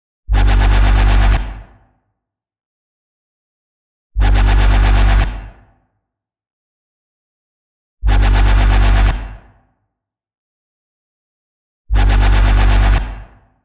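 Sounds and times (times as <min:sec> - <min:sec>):
bass in G: 0:00.3 - 0:01.7, 0:04.2 - 0:05.6, 0:08.0 - 0:09.4, 0:11.9 - 0:13.3.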